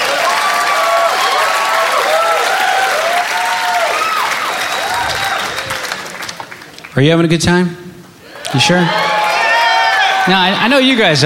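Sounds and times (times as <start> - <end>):
audience whoops and cheers: 0.0 - 6.0, 8.2 - 10.6
large theater audience applause: 0.0 - 6.9, 8.4 - 11.2
speech: 7.0 - 7.8, 8.5 - 9.0, 10.3 - 11.2.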